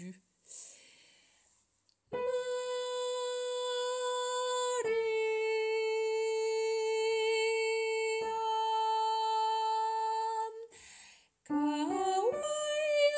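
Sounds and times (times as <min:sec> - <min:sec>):
sopranos singing a descant: 0:02.1 - 0:10.5, 0:11.5 - 0:13.1.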